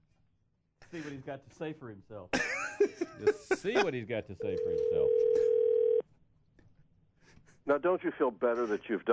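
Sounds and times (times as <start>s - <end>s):
speech: 0.9s - 5.6s, 7.7s - 9.1s
laughter: 2.4s - 4.1s
steady continuous telephone dial tone: 4.6s - 6.0s.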